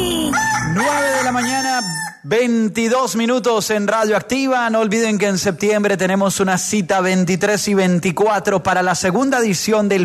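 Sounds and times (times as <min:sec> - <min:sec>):
rooster crowing: 0:00.0 - 0:02.2
speech: 0:02.2 - 0:10.0.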